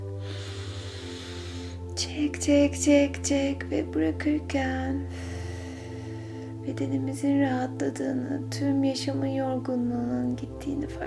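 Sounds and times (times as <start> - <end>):
deep breath in: 0.1 - 1.9, 5.1 - 6.6
speech: 2.0 - 5.3, 6.7 - 11.0.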